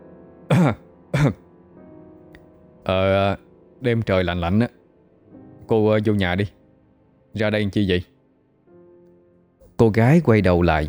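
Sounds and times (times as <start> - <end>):
man coughing softly: 0.5 - 1.4
speech: 0.6 - 1.4, 2.9 - 4.8, 5.7 - 6.6, 7.4 - 8.1, 9.8 - 10.8.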